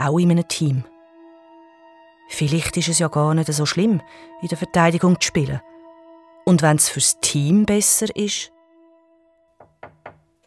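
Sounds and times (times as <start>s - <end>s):
speech: 0.0s - 0.9s, 2.3s - 5.7s, 6.5s - 8.6s
sustained soft musical tone: 0.0s - 10.4s
firm knocks on a room door: 9.6s - 10.3s.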